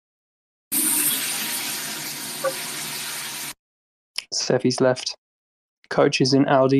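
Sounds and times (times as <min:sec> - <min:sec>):
shower water running while someone showers: 0:00.7 - 0:03.6
speech: 0:04.3 - 0:05.2, 0:05.9 - 0:06.7.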